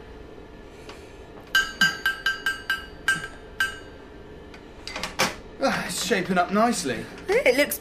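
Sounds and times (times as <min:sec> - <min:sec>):
hammer striking hot metal on an anvil: 0:01.5 - 0:04.0
speech: 0:05.6 - 0:07.7.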